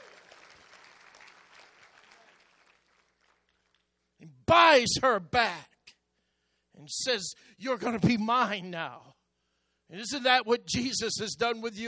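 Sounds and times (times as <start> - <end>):
audience clapping hands in praise: 0.0 - 4.0
speech: 4.2 - 5.7, 6.9 - 9.1, 9.9 - 11.8.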